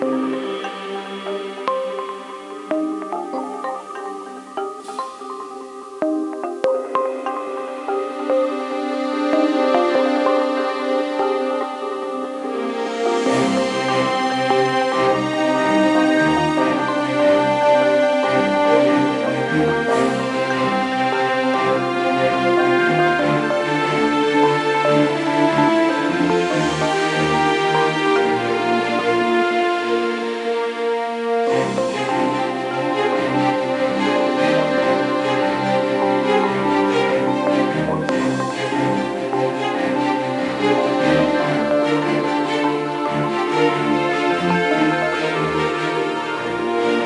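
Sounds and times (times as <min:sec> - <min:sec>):
game background music: 0:00.0 - 0:47.0.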